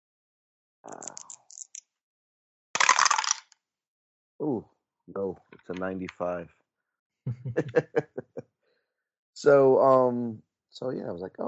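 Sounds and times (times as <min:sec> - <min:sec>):
dice being rolled during a tabletop game: 0:00.9 - 0:01.8, 0:02.8 - 0:03.6
speech: 0:04.4 - 0:06.6, 0:07.2 - 0:08.4, 0:09.4 - 0:11.4
laughter: 0:07.3 - 0:08.4.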